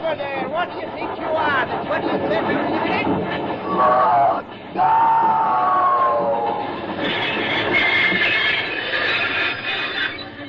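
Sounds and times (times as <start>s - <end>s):
locomotive running along rails at night: 0.0s - 10.4s
speech: 1.8s - 5.2s.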